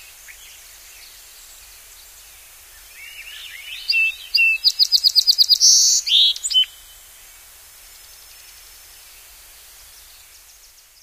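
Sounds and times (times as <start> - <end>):
song sparrow singing: 2.8 - 6.9.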